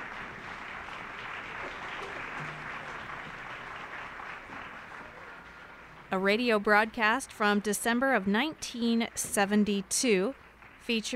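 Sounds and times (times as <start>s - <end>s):
large audience applauding a concert band: 0.0s - 6.2s, 10.3s - 11.1s
speech: 6.1s - 11.1s.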